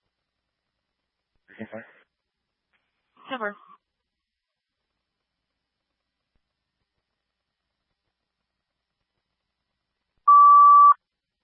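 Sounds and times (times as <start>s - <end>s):
speech: 1.6s - 2.0s, 3.3s - 3.7s
fire department pager alert tone: 10.3s - 11.0s.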